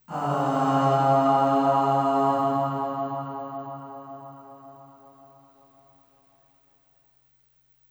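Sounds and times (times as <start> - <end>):
short low sung aah with long reverb: 0.0 - 5.6.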